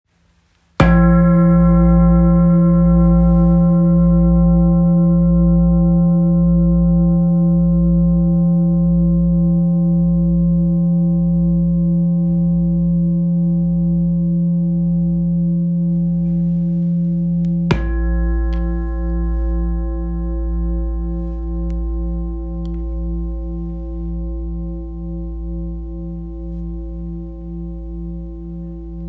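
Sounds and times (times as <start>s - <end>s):
large 9.34kg singing bowl tuned to A: 0.8s - 29.0s.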